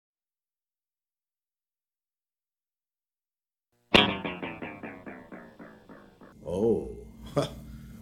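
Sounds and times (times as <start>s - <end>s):
plucked note with tape delay echoes and speed-change pitch shift: 3.9s - 6.4s
bright hit: 4.0s - 6.4s.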